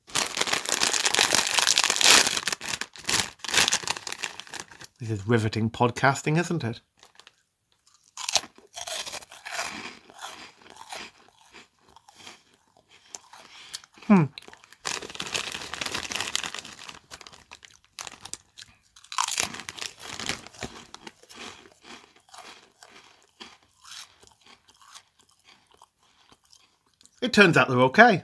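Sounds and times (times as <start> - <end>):
packet of pickled onion crisps torn open and crinkled: 0.0 - 5.0, 7.0 - 7.4, 14.2 - 23.3
speech: 5.0 - 6.9, 27.4 - 28.2.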